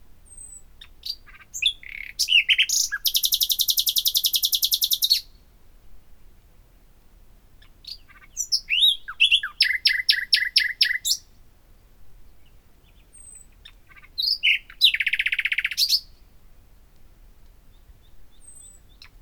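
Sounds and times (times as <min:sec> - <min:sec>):
Common nightingale Luscinia megarhynchos singing: 0:00.2 - 0:05.5, 0:07.6 - 0:11.4, 0:12.3 - 0:16.3, 0:17.6 - 0:19.2.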